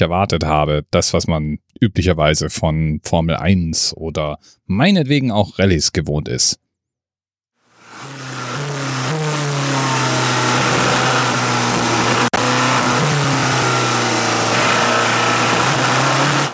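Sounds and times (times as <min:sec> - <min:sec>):
speech: 0:00.0 - 0:06.6
diesel race car engine droning at the 24 Hours of Le Mans: 0:07.7 - 0:16.5.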